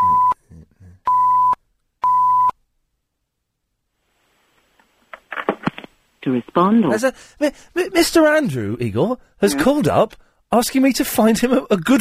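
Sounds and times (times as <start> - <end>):
censoring beep tone over phone number: 0.0 - 0.4, 1.1 - 2.6
rustling noise: 3.9 - 6.8
speech: 6.2 - 11.9.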